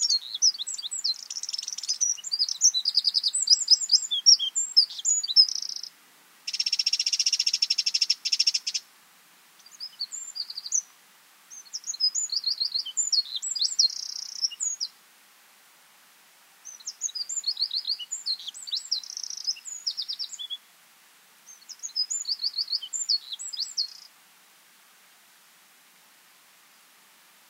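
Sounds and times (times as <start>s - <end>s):
Eurasian wren Troglodytes troglodytes singing: 0.0s - 5.9s, 6.5s - 8.8s, 9.6s - 10.9s, 11.5s - 15.0s, 16.6s - 20.6s, 21.5s - 24.1s.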